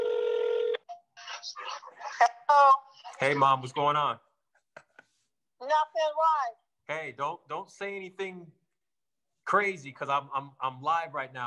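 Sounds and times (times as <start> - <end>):
steady electronic tone from a work phone: 0.0 - 1.0
speech: 2.2 - 4.3, 6.0 - 8.6, 9.5 - 11.4.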